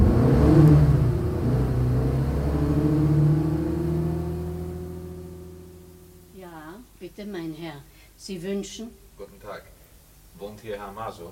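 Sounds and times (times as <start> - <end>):
car pulling away with low engine rumble: 0.0 - 6.4
speech: 7.2 - 9.7, 10.4 - 11.3.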